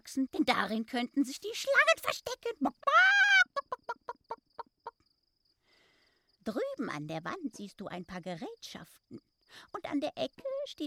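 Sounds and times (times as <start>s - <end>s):
speech: 0.0s - 3.2s, 6.5s - 10.8s
chicken clucking: 3.5s - 5.1s.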